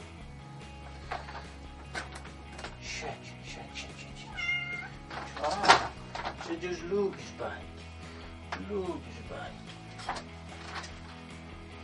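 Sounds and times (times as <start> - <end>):
rustling and handling noises: 0.8 - 2.9, 4.8 - 7.4, 8.1 - 11.4
cat meowing in a complaining unhappy tone: 4.2 - 5.0
speech: 6.6 - 7.7, 8.6 - 9.6.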